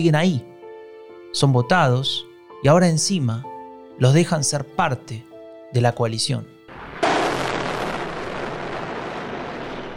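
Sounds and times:
speech: 0.0s - 0.5s, 1.3s - 6.5s
heavy bomb explosion from warplanes attacking a palace, played from a tablet: 6.7s - 9.9s.

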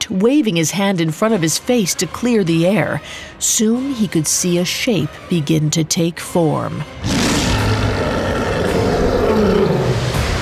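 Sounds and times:
speech: 0.1s - 7.5s
mighty creature roar echoing across valley: 7.0s - 10.2s.

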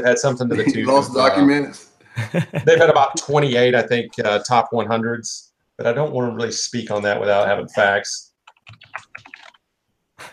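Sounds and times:
laughter: 0.0s - 4.1s
speech: 0.0s - 9.1s
computer keyboard typing: 8.4s - 9.6s.

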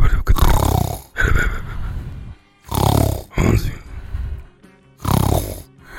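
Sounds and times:
person snoring lying on a sofa: 0.0s - 4.4s, 5.0s - 5.9s.

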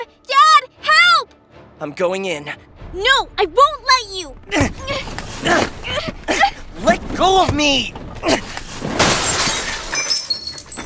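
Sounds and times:
speech: 1.8s - 8.5s
mirror shattering: 8.8s - 10.8s
glass shards tinkling and scattering: 9.0s - 10.8s.

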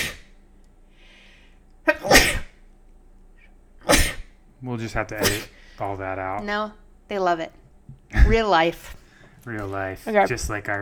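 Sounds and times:
person sneezing: 0.0s - 0.3s, 1.9s - 2.6s, 3.8s - 4.3s, 5.2s - 5.6s
speech: 4.6s - 10.8s.

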